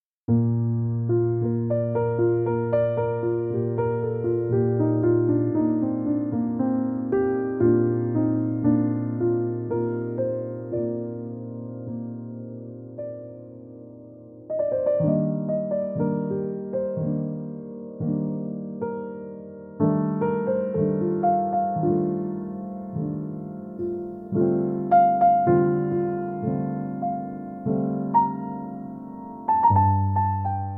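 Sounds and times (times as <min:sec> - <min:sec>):
chill instrumental jazz piano: 0:00.3 - 0:30.7.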